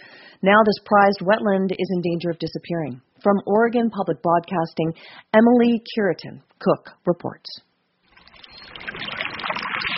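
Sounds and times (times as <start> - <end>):
speech: 0.4 - 7.7
groundwater bubbling up from the ground at a spring in a high-desert wetland in southern Oregon: 8.1 - 9.9.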